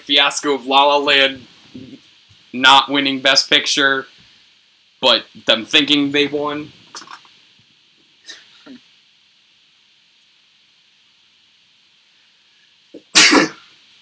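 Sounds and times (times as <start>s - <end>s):
speech: 0.0s - 1.9s, 2.5s - 4.1s, 5.0s - 7.1s
single loud sneeze: 13.0s - 13.7s.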